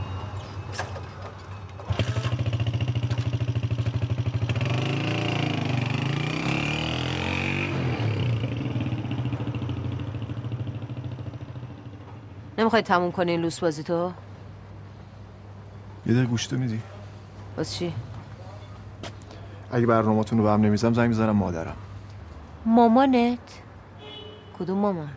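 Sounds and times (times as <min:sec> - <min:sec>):
motorcycle engine starting with a sputtering roar and revving: 0:00.4 - 0:12.0
speech: 0:12.6 - 0:14.2, 0:16.0 - 0:16.9, 0:17.6 - 0:18.1, 0:19.7 - 0:21.8, 0:22.6 - 0:23.6, 0:24.6 - 0:25.1.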